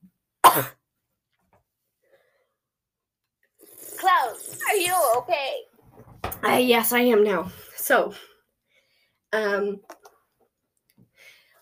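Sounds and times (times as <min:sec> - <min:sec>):
harsh raspy cough after inhaling dust: 0:00.4 - 0:00.8
speech: 0:00.6 - 0:00.8, 0:04.0 - 0:05.7, 0:06.4 - 0:08.3, 0:09.3 - 0:10.0
faint breath: 0:02.0 - 0:02.6, 0:07.5 - 0:09.2, 0:11.0 - 0:11.5.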